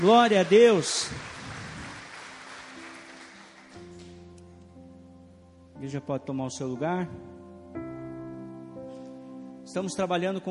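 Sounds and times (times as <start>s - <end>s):
speech: 0.0s - 1.3s, 5.8s - 7.8s, 9.7s - 10.4s
crowd applauding: 0.0s - 4.2s.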